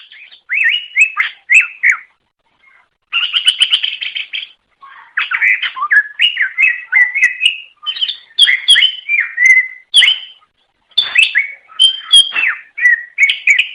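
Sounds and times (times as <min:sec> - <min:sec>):
leafbird song: 0:00.0 - 0:13.7.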